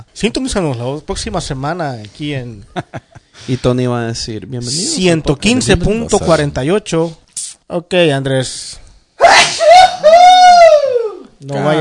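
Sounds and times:
speech: 0.1s - 8.8s, 11.4s - 11.7s
loud sneeze with voiced wail: 9.2s - 10.3s.

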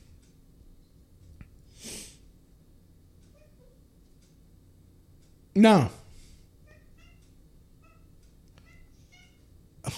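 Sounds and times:
constant low noise: 0.0s - 9.9s
cat meowing: 3.3s - 3.8s, 6.6s - 9.5s
speech: 5.6s - 6.0s.

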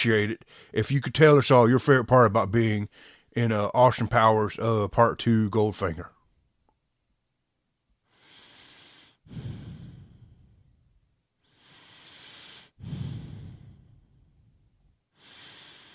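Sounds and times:
speech: 0.0s - 6.2s, 9.3s - 9.6s
heavy breathing: 0.4s - 0.8s, 2.9s - 3.4s, 8.0s - 15.9s.

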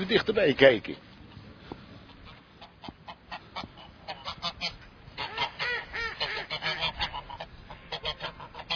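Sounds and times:
speech: 0.0s - 1.1s
busy outdoor noise: 0.0s - 8.7s
flock of geese honking: 2.1s - 8.7s.

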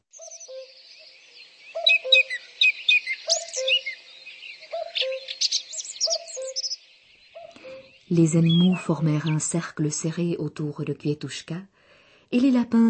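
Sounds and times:
cuckoo calling its descending two-note cry: 0.0s - 9.6s
songbirds chirping and trilling: 0.0s - 11.2s
speech: 8.1s - 12.8s.

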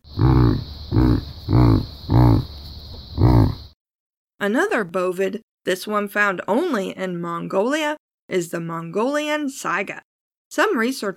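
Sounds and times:
domesticated yak grunting: 0.0s - 2.6s, 3.2s - 3.7s
speech: 4.5s - 11.1s.

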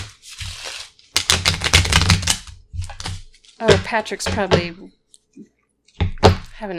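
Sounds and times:
playing cards being shuffled: 0.0s - 3.6s
speech: 3.6s - 5.5s, 6.6s - 6.7s.

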